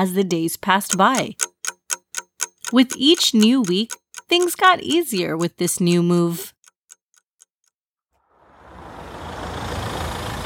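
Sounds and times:
speech: 0.0 - 1.5, 2.7 - 6.5
quick clicks: 0.8 - 7.8.

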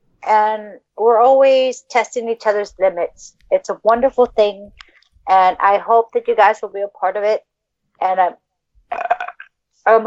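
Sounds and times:
speech: 0.3 - 9.2, 9.8 - 10.0
short throaty burp: 8.9 - 9.5.

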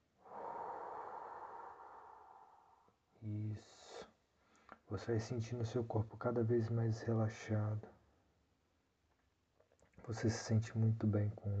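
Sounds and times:
slow deep breathing during a guided relaxation exercise: 0.1 - 3.0
speech: 3.2 - 4.1, 4.9 - 8.0, 10.1 - 11.5.

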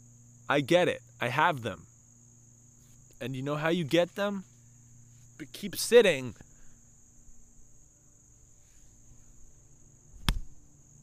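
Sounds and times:
crickets chirping: 0.0 - 11.0
speech: 0.5 - 1.9, 3.2 - 4.5, 5.4 - 6.4
hand slap swatting at a mosquito: 10.2 - 10.6.

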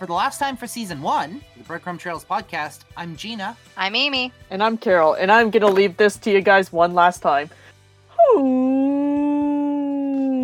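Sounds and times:
speech: 0.0 - 7.6, 8.3 - 8.8
person imitating whale call with vocal moan: 8.1 - 10.4.

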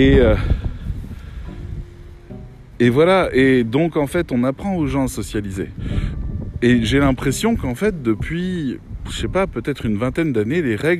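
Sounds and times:
speech: 0.0 - 0.6, 2.8 - 10.9
heavy stormy wind buffeting the microphone: 0.0 - 10.9.

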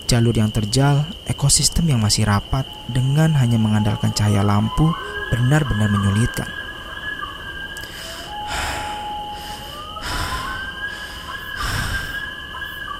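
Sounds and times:
high-pitched whine of night insects: 0.0 - 12.9
speech: 0.1 - 6.6
heavy panting of hikers climbing: 7.8 - 12.3.

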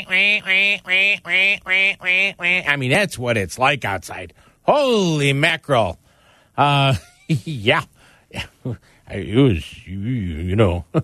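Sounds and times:
duck quacking: 0.0 - 2.7
speech: 0.1 - 6.0, 6.6 - 11.0.

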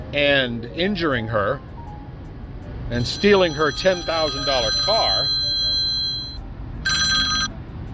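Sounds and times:
speech: 0.1 - 1.7, 2.9 - 5.4
telephone ringing with electronic ring bursts: 3.0 - 7.5.

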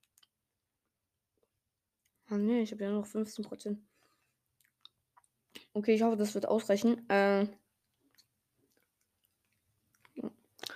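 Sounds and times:
speech: 2.3 - 3.9, 5.8 - 7.6
chewing food: 4.5 - 5.8, 7.8 - 10.7.

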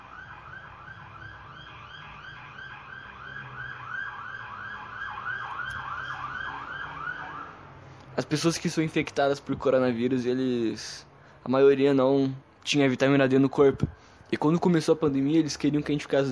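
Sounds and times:
police car siren passing in the street: 0.0 - 7.7
low rumble of traffic: 0.0 - 16.2
speech: 8.2 - 16.2.

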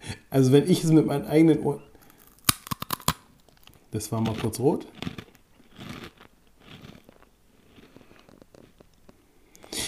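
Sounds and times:
speech: 0.3 - 1.9, 3.9 - 5.0
person biting and chewing a pretzel: 2.0 - 9.8.

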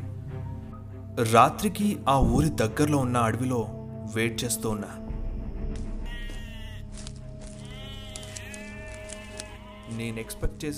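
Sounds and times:
speech: 1.2 - 5.0, 9.9 - 10.7
goats tied to a tree near a village bleating: 6.0 - 10.7.

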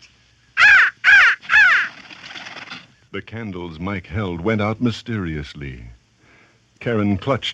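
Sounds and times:
black raven cawing: 0.5 - 2.1
speech: 3.1 - 6.0, 6.9 - 7.5.

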